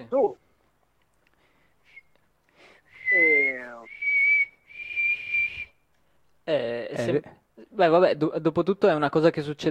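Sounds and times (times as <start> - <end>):
speech: 0.1 - 0.4, 6.5 - 9.7
person whistling a rising and falling pitch: 1.8 - 2.2, 2.8 - 5.8.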